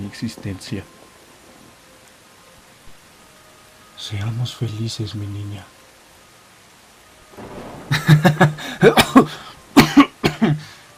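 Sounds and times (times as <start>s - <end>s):
speech: 0.1s - 1.0s, 4.0s - 5.8s, 8.1s - 9.5s
man coughing in a harsh hacking fit: 7.9s - 10.6s.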